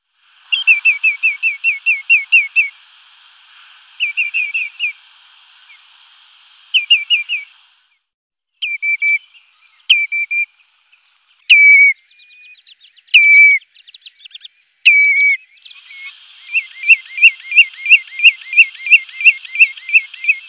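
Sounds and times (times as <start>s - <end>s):
common redshank calling: 0.5s - 6.0s, 6.7s - 7.6s, 8.6s - 20.4s.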